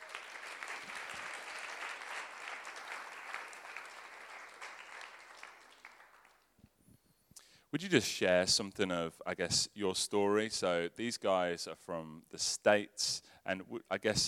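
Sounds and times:
crowd applauding: 0:00.0 - 0:06.5
scattered claps: 0:00.0 - 0:06.5
speech: 0:07.7 - 0:14.2.

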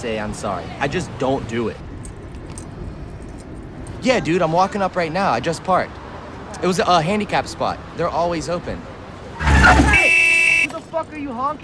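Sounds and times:
speech: 0:00.0 - 0:01.9, 0:04.0 - 0:06.0, 0:06.6 - 0:08.9, 0:10.9 - 0:11.6
street noise: 0:00.0 - 0:11.6
car horn honking: 0:09.4 - 0:10.8.

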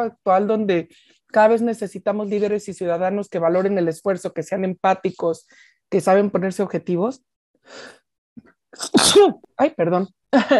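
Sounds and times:
speech: 0:00.0 - 0:10.5
woman sneezing: 0:08.8 - 0:09.4.

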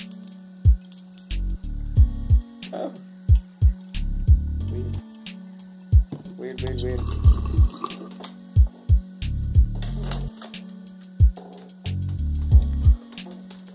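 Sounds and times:
steady hum: 0:00.0 - 0:13.7
speech: 0:02.7 - 0:03.1, 0:04.7 - 0:05.1, 0:06.4 - 0:07.8
water bubbling in a bong: 0:06.8 - 0:08.0.

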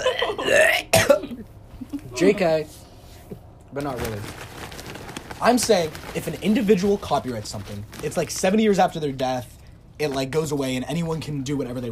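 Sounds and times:
short second belch: 0:00.0 - 0:01.3
drawn-out voiced burp: 0:00.0 - 0:01.4
speech: 0:02.2 - 0:02.8, 0:03.7 - 0:04.4, 0:05.4 - 0:11.8.

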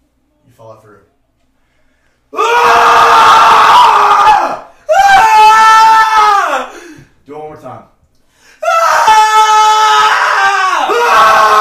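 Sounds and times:
speech: 0:00.6 - 0:01.2
person screaming loudly: 0:02.4 - 0:07.0, 0:08.6 - 0:11.5.

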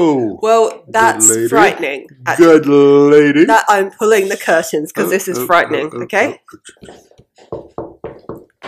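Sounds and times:
speech: 0:00.0 - 0:07.7
firm knocking on a door: 0:07.4 - 0:08.6.

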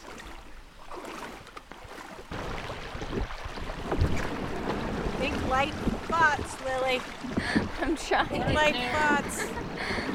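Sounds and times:
canoe scraping and dragging through shallow river water: 0:00.0 - 0:10.1
shallow river water sloshing and gurgling: 0:00.0 - 0:10.1
wind noise: 0:02.3 - 0:10.1
speech: 0:05.5 - 0:10.0
laughter: 0:07.4 - 0:10.1.

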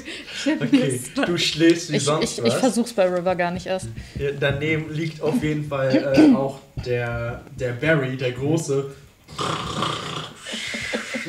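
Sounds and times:
laughter: 0:00.0 - 0:02.7, 0:10.4 - 0:11.2
speech: 0:00.4 - 0:10.2
voice imitating snoring: 0:09.3 - 0:10.6.

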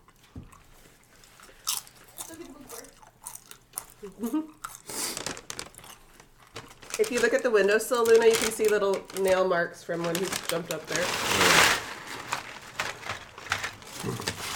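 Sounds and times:
crunching and chewing of crisp hand-fried corn masa chips: 0:00.0 - 0:07.2, 0:12.7 - 0:14.5
chip bag crinkling: 0:00.9 - 0:14.5
speech: 0:04.0 - 0:04.6, 0:07.0 - 0:11.6.

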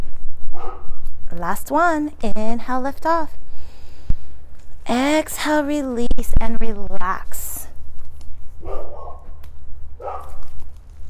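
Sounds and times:
dogs barking at a dog park: 0:00.5 - 0:01.0, 0:08.6 - 0:09.4, 0:10.0 - 0:10.6
speech: 0:00.6 - 0:03.4, 0:04.9 - 0:07.5.

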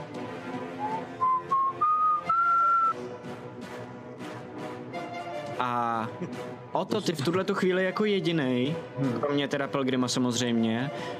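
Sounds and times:
person whistling a short rising tune: 0:00.8 - 0:03.0
speech: 0:05.6 - 0:11.1.

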